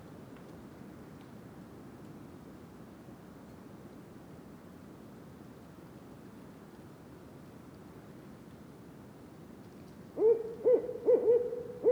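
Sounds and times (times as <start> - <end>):
Barred owl hooting in Mont-Tremblant National Park: 10.2 - 11.9.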